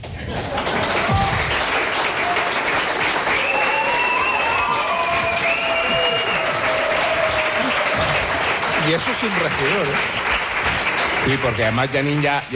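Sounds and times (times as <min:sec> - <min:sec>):
live audience applause: 0:00.0 - 0:12.5
whistles: 0:03.3 - 0:06.6
people shouting: 0:03.4 - 0:08.4
speech: 0:08.9 - 0:10.2, 0:11.2 - 0:12.5.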